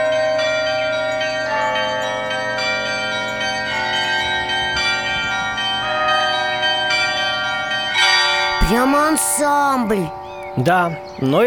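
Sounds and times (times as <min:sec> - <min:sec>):
small and medium church bells ringing together in a peal: 0:00.0 - 0:11.4
speech: 0:08.7 - 0:11.4.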